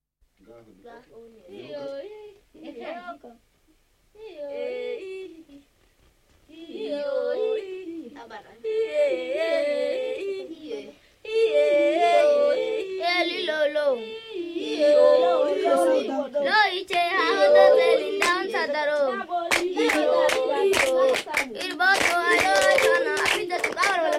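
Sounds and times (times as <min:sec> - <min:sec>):
people singing a Dorze Maskal song: 0:04.2 - 0:05.7, 0:06.5 - 0:24.1.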